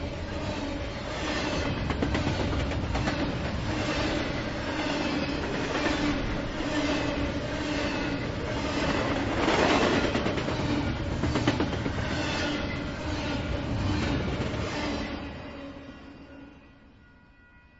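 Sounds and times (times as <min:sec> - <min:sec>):
freight train rolling past in Norway Iowa: 0:00.0 - 0:17.6
freight train wheels clattering: 0:01.1 - 0:15.2.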